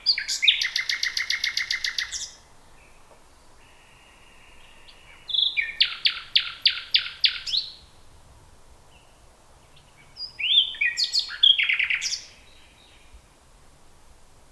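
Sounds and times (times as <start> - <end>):
common nightingale Luscinia megarhynchos singing: 0.0 - 2.4, 4.6 - 7.8, 9.8 - 13.1.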